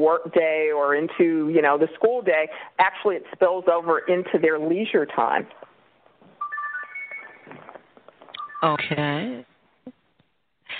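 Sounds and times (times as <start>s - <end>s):
speech: 0.0s - 5.7s, 8.6s - 9.5s
phone ringtone melody of bright electronic tones: 6.4s - 9.0s.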